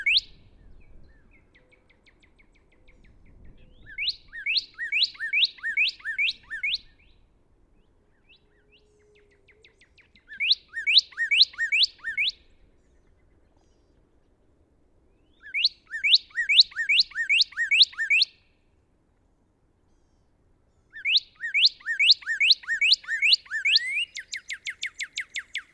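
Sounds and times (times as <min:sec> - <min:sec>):
Northern cardinal singing rapid sharp whistled notes: 0:00.0 - 0:07.2, 0:08.2 - 0:12.5, 0:15.2 - 0:18.4, 0:20.9 - 0:25.7.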